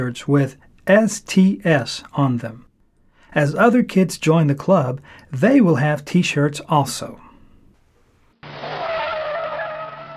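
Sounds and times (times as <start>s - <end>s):
speech: 0.0s - 2.7s, 3.3s - 7.2s
car tires squealing in a sudden skid: 8.4s - 10.1s.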